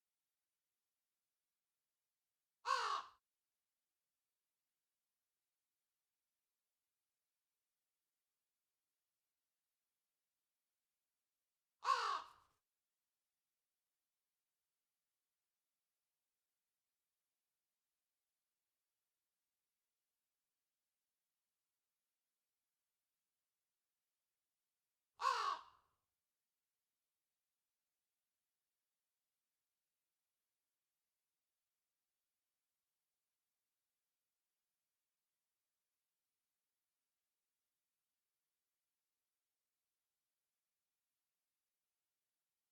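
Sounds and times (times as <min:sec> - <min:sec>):
crow call: 0:02.6 - 0:03.2, 0:11.8 - 0:12.6, 0:25.2 - 0:25.9.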